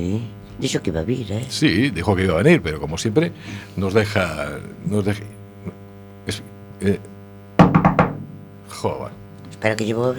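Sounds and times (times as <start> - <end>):
speech: 0.0 - 7.1, 8.8 - 10.1
knocking on a door: 7.6 - 8.6.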